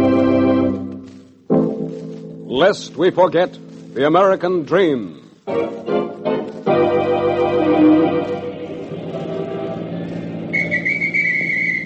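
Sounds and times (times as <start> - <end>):
busy droning street noise: 0.0 - 11.8
speech: 2.6 - 6.0
shrill police whistle blast: 10.4 - 11.8.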